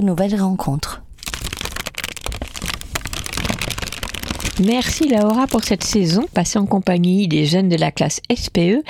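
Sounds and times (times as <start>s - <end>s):
speech: 0.0s - 1.0s, 4.6s - 8.8s
paper rustling and crinkling: 1.2s - 6.5s.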